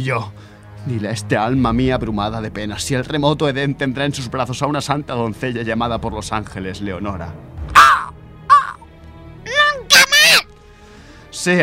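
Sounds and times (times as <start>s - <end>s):
speech: 0.0s - 7.6s, 11.4s - 11.6s
raven cawing: 7.7s - 8.9s.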